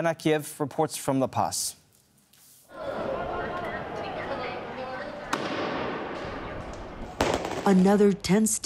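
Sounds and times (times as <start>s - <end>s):
speech: 0.0s - 1.8s, 7.6s - 8.6s
dense roar of a street protest crowd: 2.7s - 7.2s
firecracker bang at street protest: 5.3s - 7.9s.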